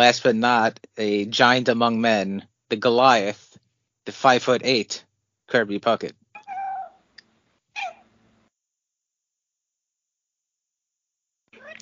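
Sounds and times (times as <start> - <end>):
speech: 0.0 - 3.4, 4.0 - 6.2
female cat meowing loudly: 7.8 - 8.0, 11.6 - 11.7.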